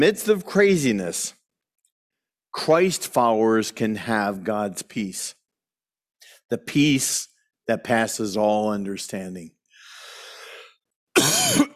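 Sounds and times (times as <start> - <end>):
speech: 0.0 - 1.4, 2.5 - 5.4, 6.5 - 9.6, 11.2 - 11.7
breathy exhale: 9.8 - 10.8
person coughing during allergy season: 11.2 - 11.7.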